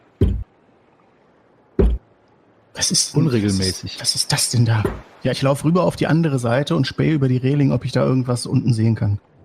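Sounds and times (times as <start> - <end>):
heavy hollow knocks against a ship's hull: 0.2 - 0.4, 1.8 - 2.0
speech: 2.8 - 9.3.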